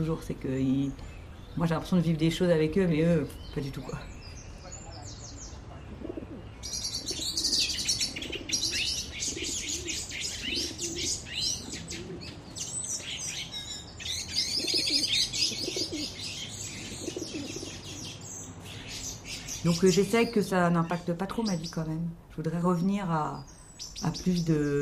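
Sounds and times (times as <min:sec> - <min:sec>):
speech: 0:00.0 - 0:04.2, 0:19.8 - 0:24.8
chorus of smaller birds chirping and twittering: 0:00.0 - 0:24.8
pigeons cooing in low throaty bursts: 0:05.3 - 0:20.0.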